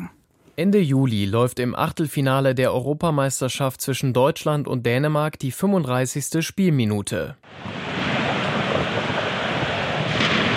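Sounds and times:
speech: 0.6 - 7.9
strong wind of approaching thunderstorm roaring: 7.5 - 10.5.

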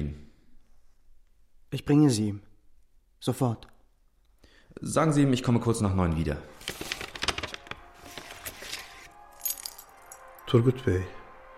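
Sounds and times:
speech: 1.7 - 2.5, 3.2 - 3.7, 4.8 - 6.9, 10.5 - 11.2
keys jangling and clinking: 8.4 - 10.4.

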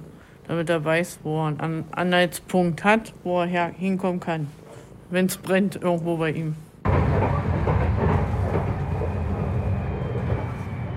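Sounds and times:
speech: 0.5 - 6.6
tram rumbling through the city heard on board: 6.8 - 10.9
tram wheels clattering on rails: 6.8 - 10.9.

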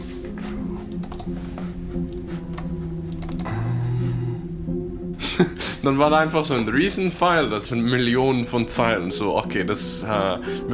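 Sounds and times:
low electronic hum: 0.0 - 5.4
computer mouse clicks: 0.9 - 3.5
computer keyboard typing: 0.9 - 3.6
speech: 5.4 - 10.7.

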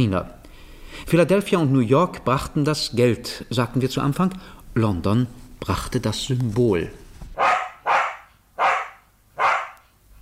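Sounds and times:
speech: 0.0 - 0.4, 1.0 - 7.0
small terrier dog barking: 7.4 - 9.9.

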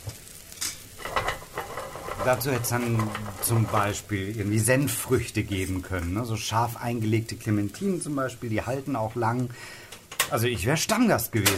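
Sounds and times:
chickpea batter frying in hot olive oil: 0.0 - 11.5
faint stirring: 1.0 - 4.1
speech: 2.2 - 11.5.

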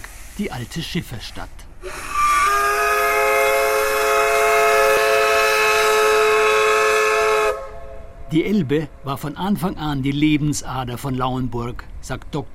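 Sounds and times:
speech: 0.4 - 2.1, 8.3 - 12.5
paddle steamer on the Elbe blowing its steam whistle: 1.8 - 8.2.

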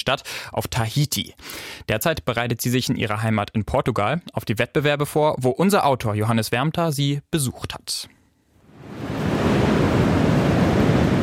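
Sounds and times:
speech: 0.0 - 8.2
crashing Atlantic surf at a beach: 8.7 - 11.2
strong Atlantic wind at a beach: 8.7 - 11.2.

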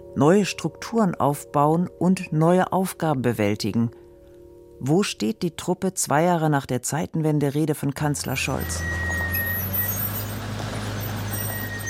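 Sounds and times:
speech: 0.2 - 4.0, 4.8 - 9.0
heavy tracked snow vehicles rumbling on a loading ramp: 8.1 - 11.8
faint high whine: 8.2 - 11.8.

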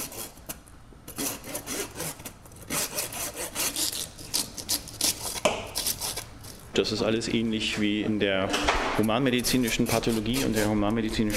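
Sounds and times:
large saw cutting through dog ribs in a pathology institute: 1.1 - 6.3, 9.3 - 11.3
speech: 6.8 - 11.3.

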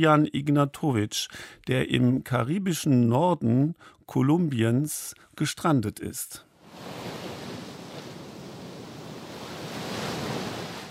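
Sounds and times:
speech: 0.0 - 7.1
heavy ocean surf breaking on a beach on the Caribbean coast of northern Colombia: 6.6 - 10.8.

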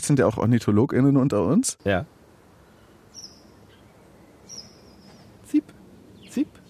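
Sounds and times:
speech: 0.0 - 2.2, 6.4 - 6.6
hiss: 0.0 - 6.6
brambling calling: 2.6 - 6.6.

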